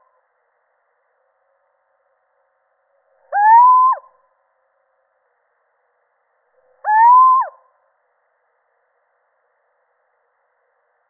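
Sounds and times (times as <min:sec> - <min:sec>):
male Little owl hooting: 0:03.3 - 0:04.1, 0:06.8 - 0:07.6.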